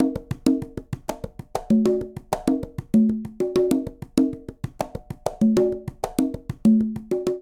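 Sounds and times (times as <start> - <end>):
quinto conga drum in Latin fusion percussion: 0.0 - 7.4.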